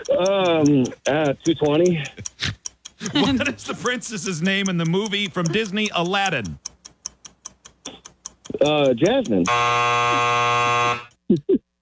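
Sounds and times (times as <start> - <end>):
speech: 0.0 - 2.4, 3.1 - 6.7, 8.6 - 11.6
laughter: 0.0 - 6.6
loud harsh sustained buzzer: 9.5 - 11.2.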